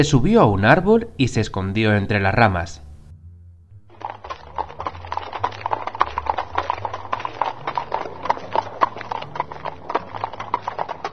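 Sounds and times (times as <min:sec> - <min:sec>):
speech: 0:00.0 - 0:02.8
low rumble: 0:02.7 - 0:05.7
many horse hooves clip-clopping while trotting: 0:03.8 - 0:11.1.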